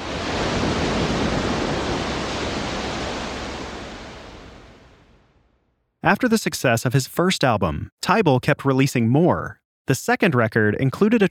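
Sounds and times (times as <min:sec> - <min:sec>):
ocean surf washing onto a seashore: 0:00.0 - 0:05.5
speech: 0:06.0 - 0:11.3.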